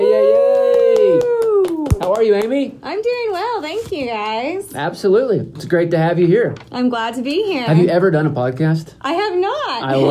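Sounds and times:
person whooping loudly: 0:00.0 - 0:02.0
hands clapping: 0:00.4 - 0:02.7
speech: 0:02.2 - 0:10.0.

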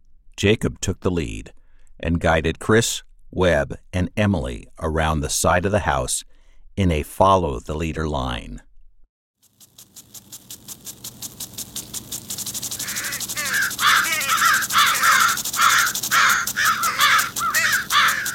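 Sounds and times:
speech: 0:00.4 - 0:08.7
large flock of crows cawing overhead: 0:12.8 - 0:18.3.

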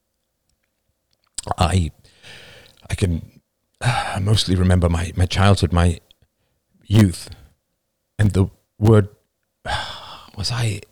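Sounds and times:
soft mouth clicks and small wet sounds of sipping ice water: 0:01.2 - 0:01.7
speech: 0:01.4 - 0:06.0, 0:06.9 - 0:07.4, 0:08.2 - 0:09.8, 0:10.4 - 0:10.8.

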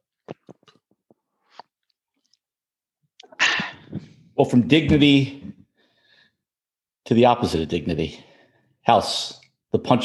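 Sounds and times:
sipping bourbon after a toast: 0:00.2 - 0:02.4
speech: 0:04.4 - 0:05.5, 0:07.1 - 0:10.0.

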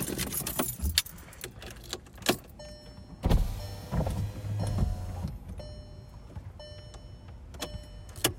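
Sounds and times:
faint jingle of keys inside a car cabin: 0:00.0 - 0:02.6
car power window motor whirring as the glass rolls down: 0:03.3 - 0:05.4.

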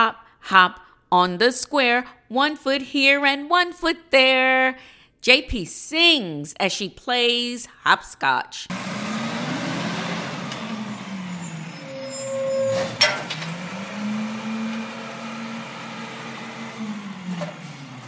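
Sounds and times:
speech: 0:00.0 - 0:09.0
big moving truck engine rumbling and idling: 0:08.7 - 0:18.0.

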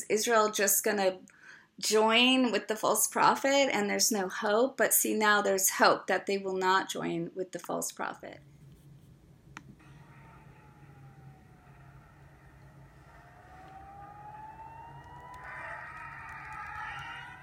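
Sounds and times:
speech: 0:00.1 - 0:08.6
low rumbling background: 0:08.4 - 0:17.4
air raid sirens wailing: 0:08.5 - 0:17.4.

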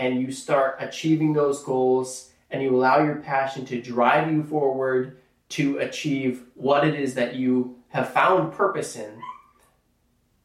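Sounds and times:
speech: 0:00.0 - 0:09.3
cat meowing: 0:09.2 - 0:09.6.

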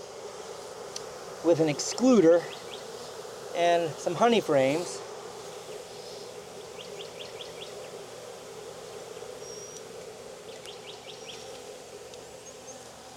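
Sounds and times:
many honeybees buzzing: 0:00.0 - 0:13.1
speech: 0:01.4 - 0:02.6, 0:03.6 - 0:05.1
faint bird chirps: 0:05.7 - 0:07.9, 0:08.9 - 0:09.9, 0:10.5 - 0:11.5.

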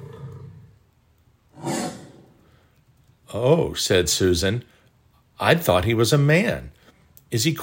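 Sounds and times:
lion roar: 0:00.0 - 0:00.8, 0:01.6 - 0:02.4
speech: 0:03.3 - 0:04.7, 0:05.4 - 0:07.6.

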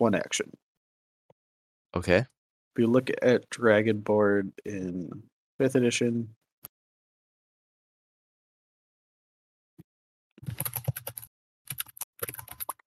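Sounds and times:
speech: 0:00.0 - 0:00.7, 0:01.9 - 0:06.4
rapid typing on a computer keyboard: 0:10.4 - 0:12.8.

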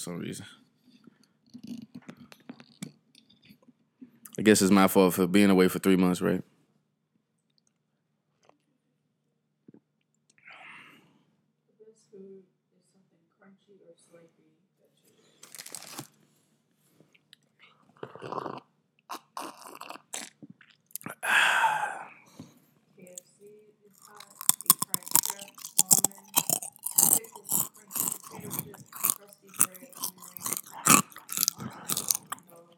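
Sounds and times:
speech: 0:00.0 - 0:00.6, 0:04.4 - 0:06.5
chewing a crunchy cheese snack: 0:01.5 - 0:03.7, 0:15.4 - 0:16.1, 0:17.2 - 0:21.2, 0:23.9 - 0:32.7
breathy exhale: 0:21.2 - 0:22.3.

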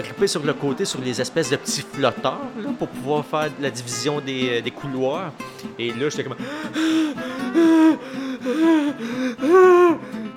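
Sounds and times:
speech: 0:00.0 - 0:10.2
person imitating panicked gasping for breath in a swimming pool: 0:06.4 - 0:10.3.

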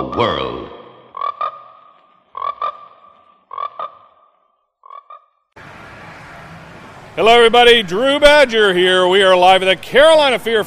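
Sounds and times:
speech: 0:00.2 - 0:00.7, 0:07.2 - 0:10.6
frogs croaking in quick double calls: 0:01.1 - 0:05.8.

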